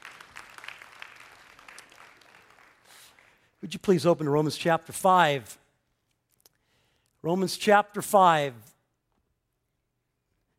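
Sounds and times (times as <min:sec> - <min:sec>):
church audience clapping: 0:00.0 - 0:03.6
speech: 0:03.6 - 0:05.6, 0:07.2 - 0:08.7.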